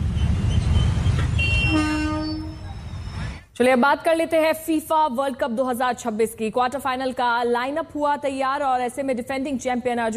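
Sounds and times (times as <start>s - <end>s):
train rumbling heavily along railway track in India: 0.0s - 3.4s
high-pitched metallic squeal of braking train: 0.0s - 3.5s
speech: 3.6s - 10.1s.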